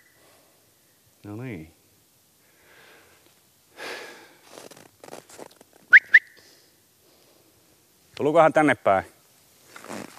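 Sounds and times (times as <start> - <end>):
speech: 1.2 - 1.8, 8.2 - 9.2
breathy rustling and soft handling noises outdoors: 4.4 - 5.9, 9.6 - 10.1
sharp whistle blasts to call two hunting dogs back: 5.9 - 6.4.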